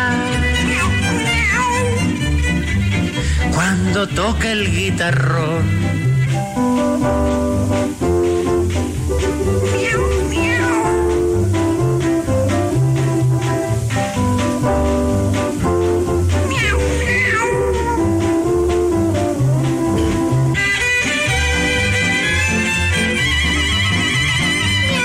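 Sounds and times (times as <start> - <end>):
cats meowing: 0.0 - 2.4, 9.3 - 11.5, 16.4 - 18.6
loud music: 0.0 - 25.0
speech: 4.0 - 7.8.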